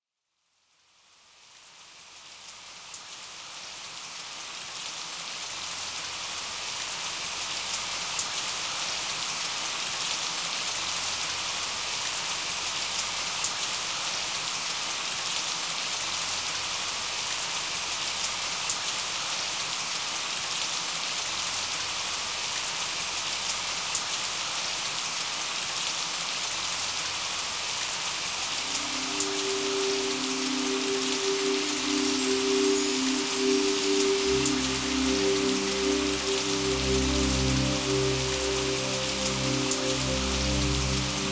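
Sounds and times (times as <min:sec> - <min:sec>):
rain: 0:00.4 - 0:41.2
music: 0:28.6 - 0:41.2.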